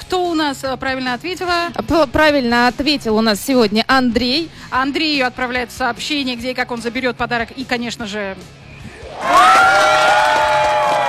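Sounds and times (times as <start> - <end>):
speech: 0.4 - 8.6
crowd cheering and whooping after a correct quiz answer: 9.0 - 11.0.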